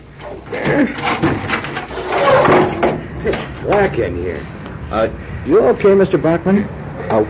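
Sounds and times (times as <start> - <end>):
barricaded flat door being shoved open with scraping and grinding: 0.0 - 3.9
speech: 0.8 - 1.2, 3.8 - 7.2.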